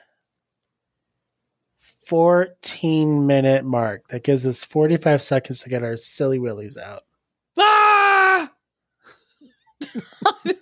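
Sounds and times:
speech: 0:01.9 - 0:07.8, 0:09.9 - 0:10.6
loud sustained scream: 0:07.6 - 0:08.6
choppy breathy laughter-like vocal bursts: 0:09.0 - 0:10.6.

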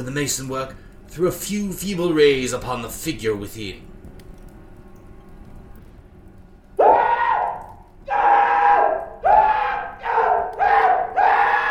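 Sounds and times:
speech: 0:00.0 - 0:03.9
chained man screaming shrilly: 0:06.8 - 0:11.6.

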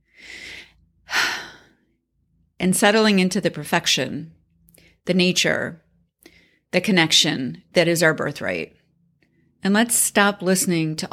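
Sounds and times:
deep breath: 0:00.0 - 0:01.9
speech: 0:02.6 - 0:04.4, 0:05.0 - 0:05.8, 0:06.7 - 0:08.8, 0:09.6 - 0:11.1.

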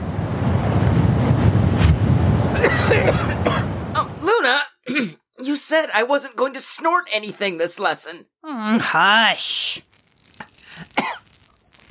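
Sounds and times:
soft breeze over sand conjured by a spell: 0:00.0 - 0:04.2
speech: 0:05.6 - 0:09.9.

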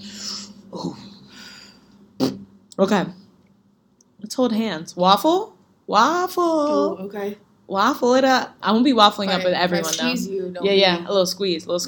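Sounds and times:
group of people taking a deep breath in before a prayer: 0:01.3 - 0:02.0
speech: 0:02.8 - 0:03.2, 0:04.3 - 0:11.8.

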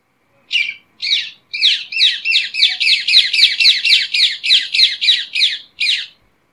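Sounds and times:
ring-necked parakeets calling loudly: 0:00.5 - 0:06.2.

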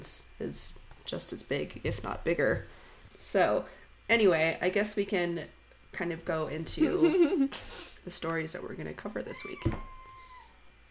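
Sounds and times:
speech: 0:00.0 - 0:09.9
laughter: 0:06.8 - 0:07.5
cat giving a drawn-out meow: 0:09.3 - 0:10.6.

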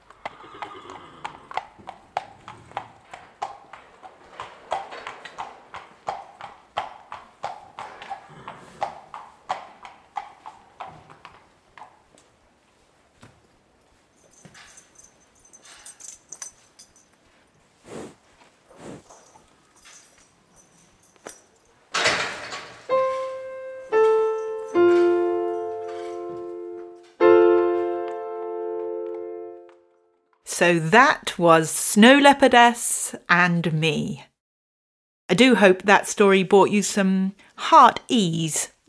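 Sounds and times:
mare's hooves clip-clopping on a hard surface: 0:00.0 - 0:30.1
speech: 0:30.6 - 0:34.3, 0:35.4 - 0:38.8.

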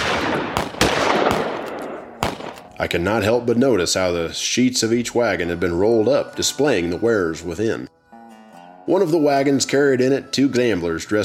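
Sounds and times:
gunshots fired into the air by onlookers in a frontier town street: 0:00.0 - 0:02.6
dense steady noise: 0:00.0 - 0:11.2
speech: 0:02.8 - 0:08.0, 0:08.9 - 0:11.2.

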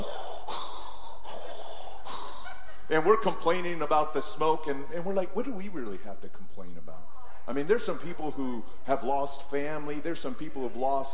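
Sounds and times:
person in a face mask imitating heavy mechanical respirator breathing: 0:00.0 - 0:02.9
laughter: 0:02.1 - 0:04.8
speech: 0:02.9 - 0:11.1.

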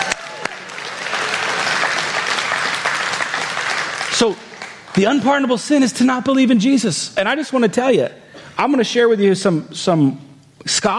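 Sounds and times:
audience applauding: 0:00.0 - 0:05.4
speech: 0:04.2 - 0:10.9.

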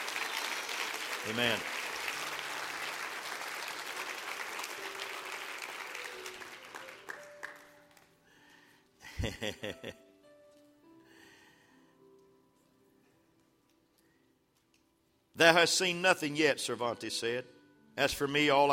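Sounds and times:
congregation applauding: 0:00.0 - 0:08.1
speech: 0:01.2 - 0:01.8, 0:09.4 - 0:10.1, 0:15.4 - 0:18.7
laughter: 0:09.0 - 0:10.0.

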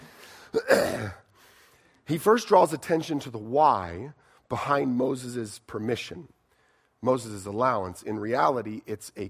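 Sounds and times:
person clearing throat with a suppressed cough: 0:00.6 - 0:01.3
speech: 0:02.1 - 0:06.4, 0:07.0 - 0:09.2.

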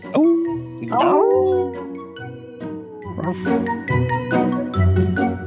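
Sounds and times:
people howling imitating dogs: 0:00.1 - 0:03.4
speech: 0:00.9 - 0:02.0, 0:03.2 - 0:05.2.

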